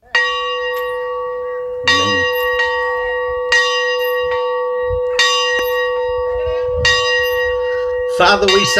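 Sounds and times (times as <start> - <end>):
church bell ringing from bell tower: 0.0 - 8.7
speech: 8.2 - 8.7.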